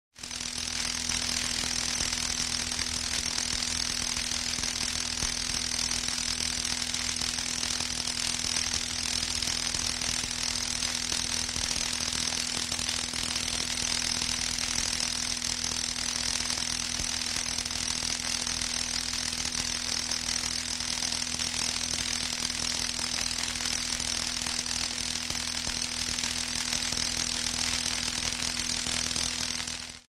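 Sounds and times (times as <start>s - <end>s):
electric current: 0.2s - 30.0s.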